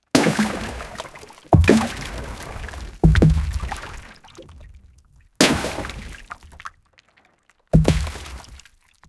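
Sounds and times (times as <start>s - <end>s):
sudden explosive splash by a boat: 0.2s - 4.1s, 5.4s - 6.5s, 7.8s - 8.6s.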